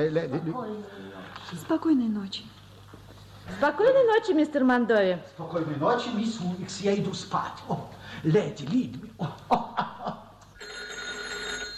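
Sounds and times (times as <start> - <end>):
speech: 0.0 - 2.6, 3.5 - 9.9
laughter: 9.1 - 10.4
telephone bell ringing: 10.6 - 11.7.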